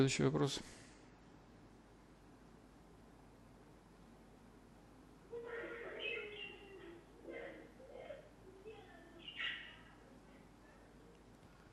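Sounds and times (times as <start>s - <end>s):
speech: 0.0s - 0.9s
soft hiss: 0.0s - 11.7s
small birds chirping: 5.6s - 7.6s, 8.6s - 10.0s.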